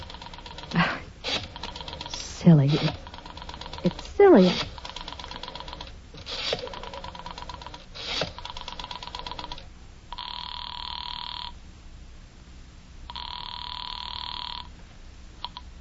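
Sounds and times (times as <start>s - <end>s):
phone ringing in long buzzing bursts: 0.0s - 5.9s, 6.5s - 11.6s, 13.1s - 14.7s
speech: 2.4s - 3.1s, 3.8s - 4.7s
telephone being dialed with clicks and clunks: 2.9s - 9.6s.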